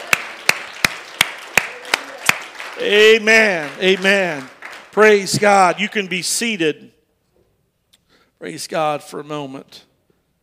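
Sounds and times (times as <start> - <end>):
group clapping hands in unison: 0.0 - 5.9
speech: 2.8 - 7.0, 8.4 - 9.9.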